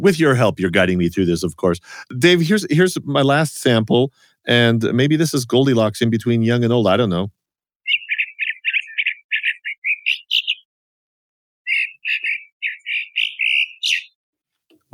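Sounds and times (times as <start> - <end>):
speech: 0.0 - 8.0
buzzy unstereotyped songbird song with repeated syllables: 7.8 - 10.7, 11.6 - 14.2.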